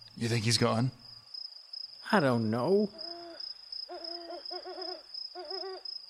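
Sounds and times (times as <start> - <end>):
speech: 0.2 - 1.0, 2.1 - 3.1
distant owl hooting: 2.9 - 5.9.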